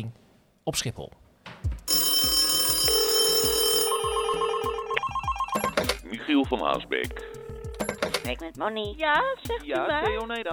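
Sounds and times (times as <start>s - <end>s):
speech: 0.0s - 1.2s, 6.2s - 7.3s, 8.2s - 10.5s
electronic telephone ring tone stepping between pitches: 1.9s - 6.0s, 7.1s - 8.3s.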